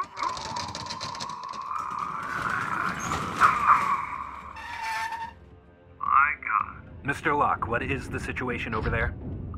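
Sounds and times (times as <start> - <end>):
heavy door forced open with metal scraping screech: 0.0 - 5.4
speech: 7.1 - 9.3.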